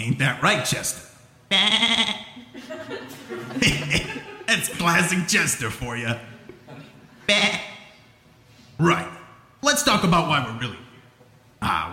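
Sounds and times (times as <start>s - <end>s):
speech: 0.0s - 6.3s, 7.3s - 7.6s, 8.8s - 10.8s, 11.6s - 11.9s
goat bleating in a wavering vibrato cry: 1.5s - 2.4s
burst of laughter: 2.4s - 4.5s.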